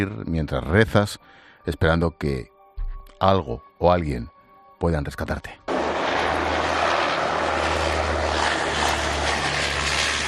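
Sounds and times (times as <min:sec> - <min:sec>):
speech: 0:00.0 - 0:02.5, 0:03.2 - 0:05.6
airplane flying over the sea: 0:05.7 - 0:10.2.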